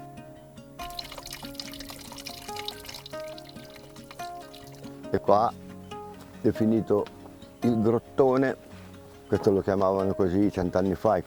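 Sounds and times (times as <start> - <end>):
water trickling and splashing from a small spring: 0.8 - 5.2
speech: 5.1 - 5.6, 6.4 - 8.6, 9.3 - 11.2.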